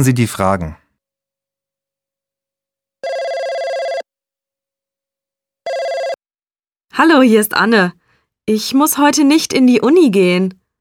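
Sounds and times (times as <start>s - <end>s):
speech: 0.0s - 0.8s, 7.0s - 10.6s
telephone ringing for an incoming call: 3.0s - 4.1s, 5.6s - 6.2s.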